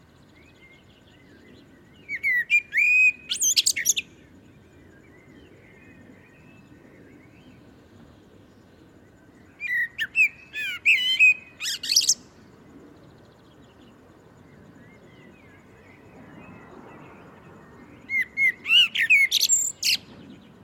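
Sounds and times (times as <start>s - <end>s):
faint low background hiss: 0.0s - 20.6s
Common blackbird Turdus merula whistling and twittering: 2.0s - 4.1s, 9.6s - 12.2s, 18.1s - 20.1s.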